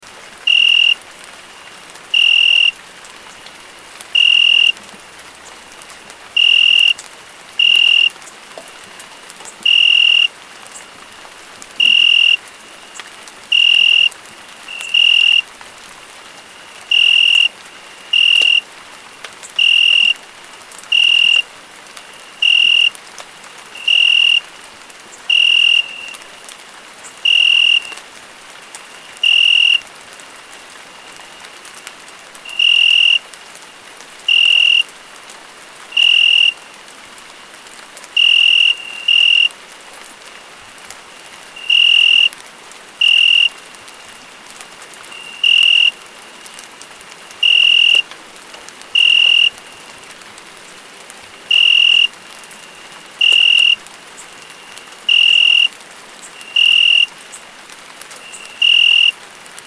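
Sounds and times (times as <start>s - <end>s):
rain: 0.0s - 59.6s
crickets chirping: 0.4s - 2.9s, 3.7s - 4.8s, 5.5s - 7.0s, 7.6s - 15.6s, 16.4s - 18.7s, 19.4s - 20.3s, 20.9s - 28.0s, 28.7s - 29.9s, 32.5s - 33.3s, 34.2s - 35.2s, 35.9s - 36.8s, 38.1s - 39.6s, 41.1s - 42.4s, 43.0s - 44.5s, 45.1s - 46.6s, 47.3s - 48.1s, 48.9s - 50.1s, 51.3s - 57.5s, 58.2s - 59.2s.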